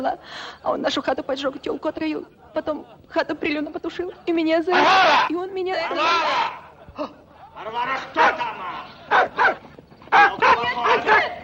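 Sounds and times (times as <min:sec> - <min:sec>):
speech: 0:00.0 - 0:11.3
dog barking at a running man: 0:09.1 - 0:11.3.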